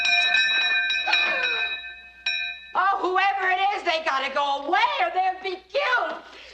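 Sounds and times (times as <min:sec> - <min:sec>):
doorbell ringing: 0:00.0 - 0:02.9
speech: 0:03.0 - 0:06.3.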